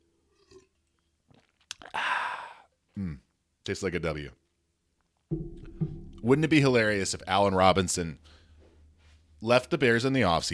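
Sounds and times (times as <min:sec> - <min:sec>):
person sipping and gulping water: 0:00.3 - 0:02.6
loud breathy rush of air: 0:01.9 - 0:02.7
speech: 0:03.0 - 0:04.4, 0:06.2 - 0:08.4, 0:09.4 - 0:10.5.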